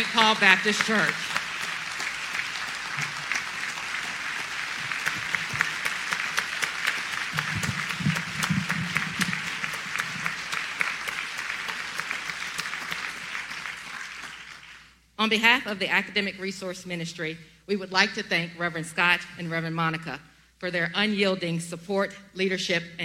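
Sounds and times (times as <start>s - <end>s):
speech: 0.0s - 1.3s, 15.2s - 23.0s
large crowd applauding: 0.0s - 14.9s.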